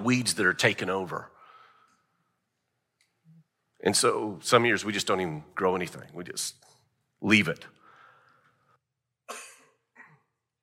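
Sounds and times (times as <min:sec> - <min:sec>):
speech: 0:00.0 - 0:01.4, 0:03.8 - 0:07.8
person coughing from a tickle in the throat: 0:09.3 - 0:10.4.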